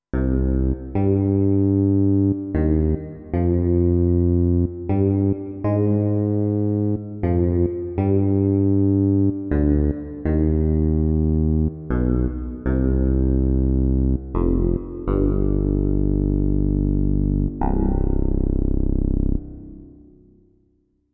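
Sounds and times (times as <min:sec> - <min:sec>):
clavinet bass: 0:00.2 - 0:19.9.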